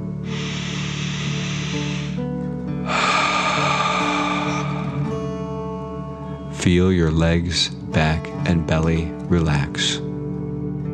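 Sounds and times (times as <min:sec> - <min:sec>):
deep breath drawn in sharply through the nose: 0:00.2 - 0:05.8
speech: 0:06.7 - 0:10.1.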